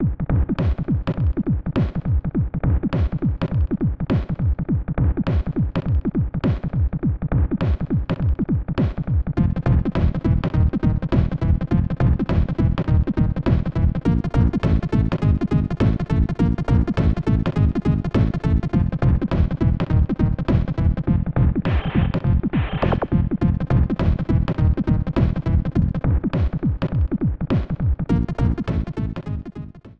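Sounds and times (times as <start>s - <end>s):
mixed music: 0.0s - 29.9s.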